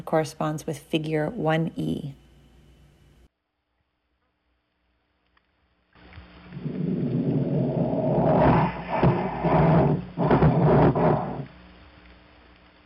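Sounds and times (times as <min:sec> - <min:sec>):
speech: 0:00.0 - 0:02.2
wild male harbor seal underwater vocalization, deep rumbling growl: 0:06.4 - 0:11.5.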